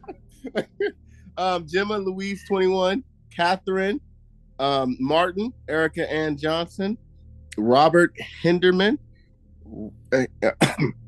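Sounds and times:
laughter: 0.0s - 0.9s
low murmur: 0.0s - 4.0s, 4.6s - 9.0s, 9.7s - 11.0s
speech: 0.4s - 7.0s, 7.6s - 9.1s, 9.7s - 11.0s
person coughing harshly into the microphone: 10.2s - 11.0s.

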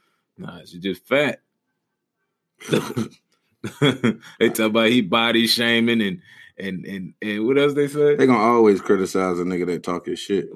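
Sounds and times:
speech: 0.4s - 1.4s, 2.6s - 10.5s
laughter: 2.6s - 3.1s, 3.7s - 10.5s
loud raspy cough: 2.6s - 3.1s.

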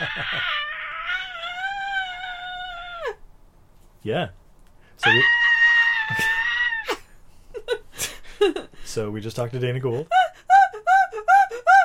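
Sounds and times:
woman screaming incoherently: 0.0s - 3.2s, 5.0s - 7.1s, 10.2s - 11.8s
speech: 4.0s - 4.4s, 5.0s - 5.4s, 8.4s - 10.2s.

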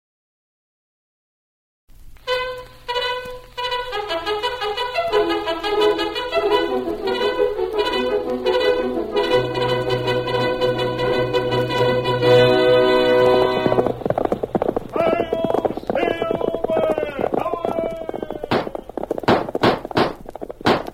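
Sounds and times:
brassy music: 2.3s - 14.1s
horse hoofbeats galloping: 2.3s - 20.9s.

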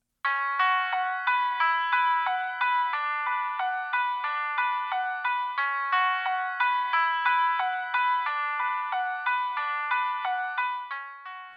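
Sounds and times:
processed keyboard or guitar playing a fast arpeggio: 0.3s - 11.5s.

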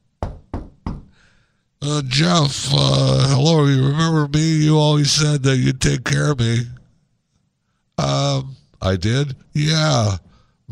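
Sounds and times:
knocking on a door: 0.2s - 1.2s
speech: 1.8s - 6.8s, 8.0s - 10.7s.

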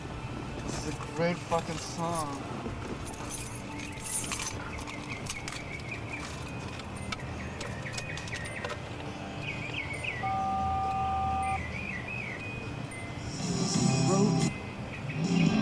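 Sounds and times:
speech: 0.9s - 2.7s
keys jangling: 3.0s - 8.8s
faint chirping tones: 3.4s - 15.5s.

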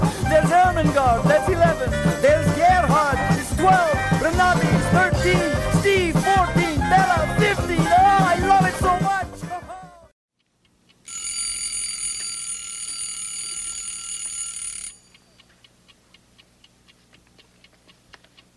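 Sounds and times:
steady clock ticking: 0.0s - 9.3s, 10.4s - 12.2s, 14.2s - 18.5s
loud shrill alarm clock bell ringing: 11.1s - 15.4s.

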